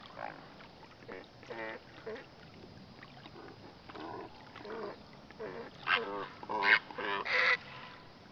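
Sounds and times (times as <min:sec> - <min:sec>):
great blue heron calling: 0:04.7 - 0:07.9.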